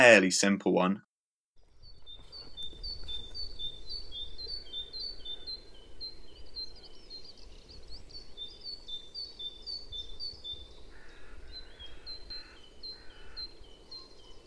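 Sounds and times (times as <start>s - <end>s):
speech: 0.0s - 1.1s
great tit singing two-note song: 1.8s - 14.4s.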